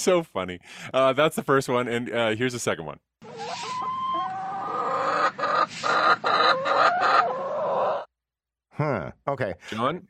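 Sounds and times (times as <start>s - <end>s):
speech: 0.0s - 3.9s, 8.8s - 10.0s
chicken clucking: 3.2s - 8.1s.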